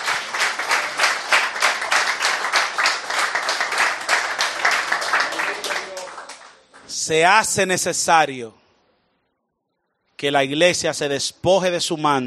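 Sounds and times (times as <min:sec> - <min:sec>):
congregation applauding during a Spanish-language church service: 0:00.0 - 0:07.1
speech: 0:07.1 - 0:08.6, 0:10.2 - 0:12.2.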